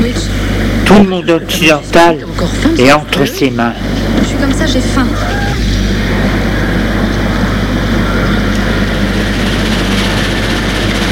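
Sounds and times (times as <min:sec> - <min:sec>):
speech: 0:00.9 - 0:05.6
train starting to move: 0:03.7 - 0:11.1.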